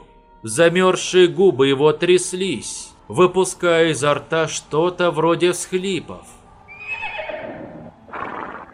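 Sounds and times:
speech: 0.4s - 6.4s
small horse neighing: 6.7s - 8.7s.

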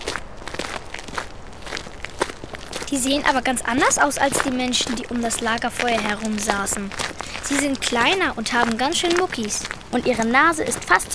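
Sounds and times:
footsteps walking toward a cave by a river: 0.0s - 11.1s
speech: 2.9s - 11.1s.

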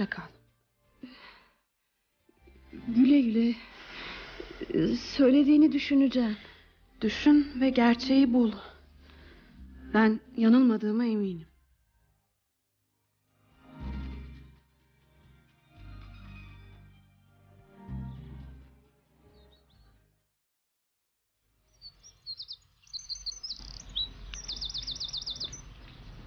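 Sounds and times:
speech: 0.0s - 0.4s, 2.8s - 3.7s, 4.7s - 8.7s, 9.9s - 11.5s
birds chirping loudly in the morning: 21.7s - 26.2s.

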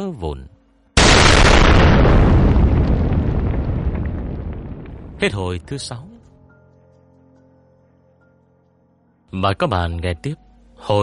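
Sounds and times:
speech: 0.0s - 0.6s, 5.2s - 6.1s, 9.3s - 11.0s
huge violent explosion: 1.0s - 5.4s.

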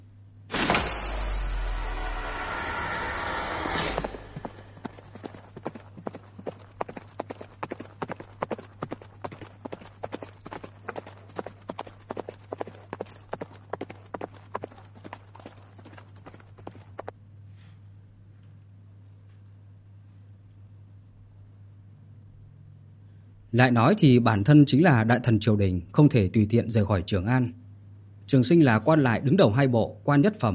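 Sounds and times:
loud rushing noise: 0.8s - 5.3s
horse hooves clip-clopping: 4.0s - 17.2s
speech: 23.6s - 27.6s, 28.3s - 30.5s.

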